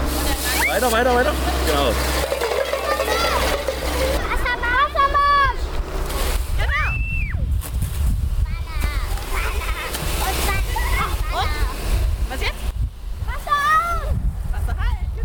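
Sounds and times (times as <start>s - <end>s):
excited children calling out and chattering: 0.0s - 6.1s, 8.5s - 12.2s
fire hose spraying water: 0.0s - 14.9s
speech: 0.7s - 2.3s.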